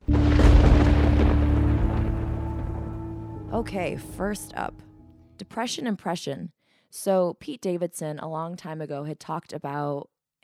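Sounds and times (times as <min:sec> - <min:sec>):
rumbling thunder sound effect: 0:00.0 - 0:04.9
speech: 0:03.6 - 0:10.1.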